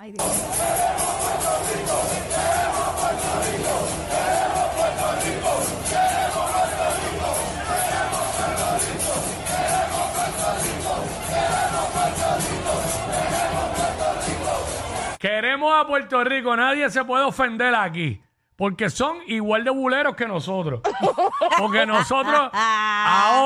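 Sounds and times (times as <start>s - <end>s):
speech: 0.0s - 2.5s, 15.3s - 23.4s
large crowd of fans chanting and yelling in celebration: 0.0s - 15.2s
laughter: 20.8s - 23.4s.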